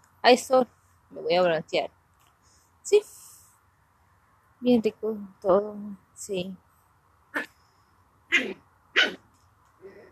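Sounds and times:
faint low hum: 0.0 - 10.1
speech: 0.2 - 2.0, 2.9 - 3.2, 4.6 - 6.6, 8.3 - 9.2
dogs barking sharply over food: 8.3 - 9.2.

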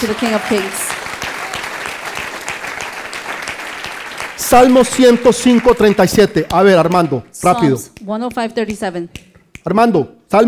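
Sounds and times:
speech: 0.0 - 1.0, 4.4 - 10.4
audience applauding loudly: 0.0 - 7.4
person calling out: 7.4 - 8.2.

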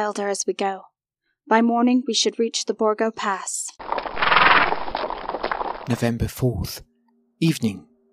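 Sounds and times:
speech: 0.0 - 0.9, 1.5 - 3.9, 5.9 - 7.9
horse hooves clip-clopping along a river track: 3.8 - 6.0.

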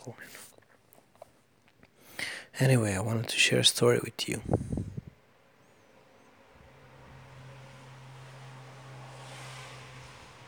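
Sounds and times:
speech: 0.0 - 0.5, 2.6 - 4.9
traffic rumble heard outside an open window: 2.6 - 10.4
vehicle passing whoosh: 6.6 - 10.4.

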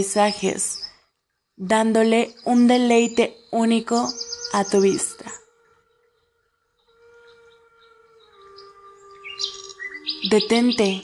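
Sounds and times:
speech: 0.0 - 0.9, 1.6 - 5.2, 10.2 - 11.0
birds singing and chirping: 0.0 - 11.0
steady sustained tone: 3.5 - 11.0.

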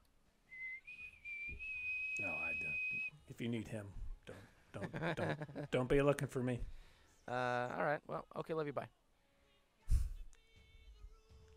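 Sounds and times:
person whistling: 0.5 - 3.2
speech: 3.4 - 4.0, 4.7 - 9.0
laughter: 4.7 - 5.9.

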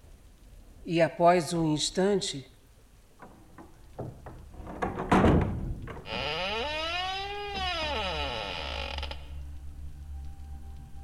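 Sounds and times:
speech: 0.9 - 2.5
dull knocks: 3.2 - 6.1
rattling thud: 3.2 - 6.1
door creaking open with groaning hinges: 3.2 - 9.5.

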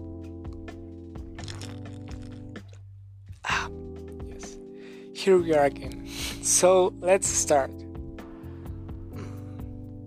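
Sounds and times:
person drinking water: 1.4 - 2.8
plastic bottle crinkling as it is squeezed: 1.4 - 2.8
speech: 5.2 - 7.8.

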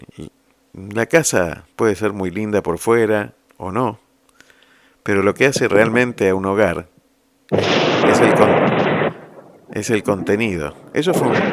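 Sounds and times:
speech: 0.2 - 4.0, 5.0 - 6.9, 7.5 - 8.6, 9.8 - 11.5
loud roll of thunder: 7.6 - 11.5.

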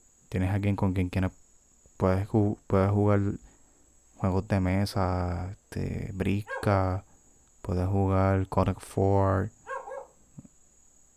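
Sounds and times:
speech: 0.3 - 1.4, 2.0 - 3.4, 4.2 - 9.6
dog barking in short bursts: 6.4 - 6.9, 9.6 - 10.2.

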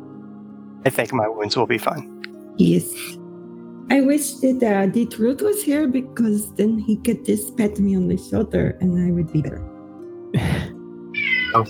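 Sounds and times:
speech: 0.8 - 3.2, 3.9 - 9.7
cat meowing: 11.2 - 11.6.

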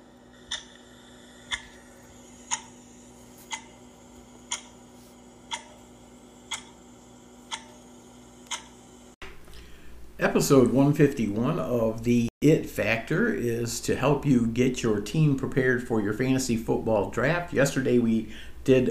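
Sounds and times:
low constant hum: 0.0 - 18.9
clock ticking: 0.4 - 8.8
speech: 10.2 - 18.9.

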